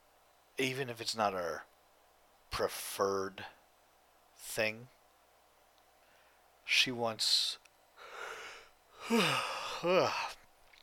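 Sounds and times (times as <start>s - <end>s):
speech: 0.6s - 1.7s, 2.6s - 3.6s, 4.4s - 5.0s, 6.7s - 7.6s, 9.1s - 10.4s
person yawning: 8.1s - 10.4s.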